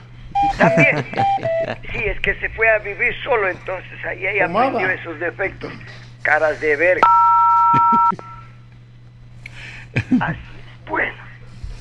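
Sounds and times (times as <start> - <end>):
two-tone telephone keypad beep from dialing a call: 0.4 - 1.7, 7.0 - 8.4
laughter: 0.4 - 2.1, 7.7 - 8.3, 10.0 - 10.7
speech: 0.6 - 8.3, 10.0 - 11.2.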